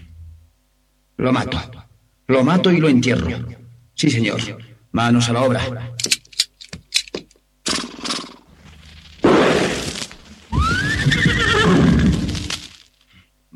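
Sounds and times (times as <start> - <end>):
speech: 1.2 - 6.2
horse neighing in a shrill wavering whinny: 10.5 - 12.4.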